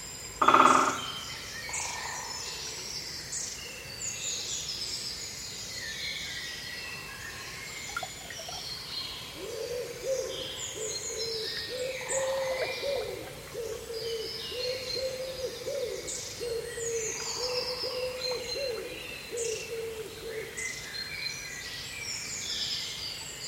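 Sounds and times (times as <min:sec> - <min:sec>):
spring woodland chorus of many birds chirping and trilling in Surrey: 0:00.3 - 0:23.4
low steady hooting owl-like call: 0:09.4 - 0:20.5.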